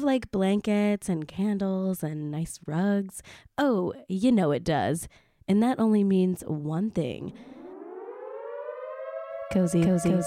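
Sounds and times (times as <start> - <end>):
speech: 0.0 - 7.6, 9.5 - 10.2
alarm siren sound effect: 7.1 - 10.2.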